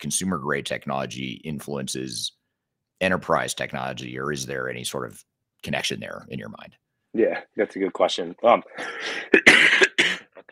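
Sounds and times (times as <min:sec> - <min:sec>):
speech: 0:00.0 - 0:02.4, 0:03.0 - 0:09.6
person coughing sharply: 0:08.8 - 0:10.5
raspy throat-clearing rumble: 0:09.4 - 0:10.5.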